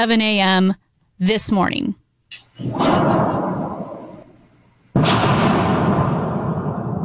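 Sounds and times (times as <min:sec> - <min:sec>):
speech: 0:00.0 - 0:02.0, 0:02.6 - 0:03.3
meteor sonic boom: 0:02.6 - 0:04.3, 0:05.0 - 0:07.0.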